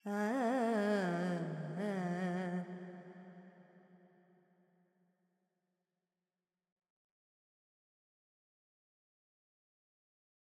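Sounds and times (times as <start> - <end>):
female Carnatic pentatonic vocal alap in G: 0.0 - 3.1.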